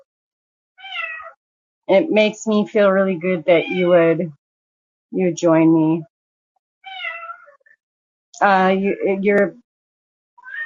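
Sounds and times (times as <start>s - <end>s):
cats meowing at each other: 0.8s - 1.4s, 6.9s - 7.6s, 10.4s - 10.6s
speech: 1.9s - 4.4s, 5.1s - 6.1s, 8.4s - 9.6s.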